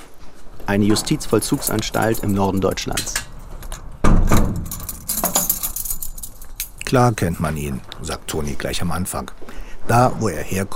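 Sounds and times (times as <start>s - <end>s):
speech: 0.7s - 3.3s, 6.9s - 10.7s
keys turning in a lock at a prison in northern Germany: 0.8s - 7.5s.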